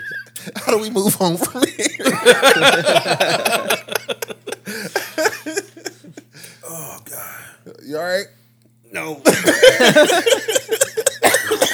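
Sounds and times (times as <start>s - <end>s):
laughter: 0.0s - 6.3s, 9.2s - 11.7s
speech: 0.7s - 4.9s, 7.9s - 10.6s
person coughing in a rapid sputtering fit: 9.3s - 9.8s, 11.0s - 11.7s.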